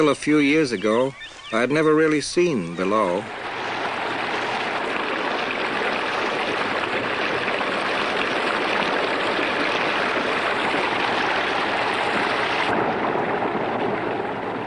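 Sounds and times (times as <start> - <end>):
speech: 0.0 - 3.4
river water rushing with bright splashing: 3.1 - 14.6.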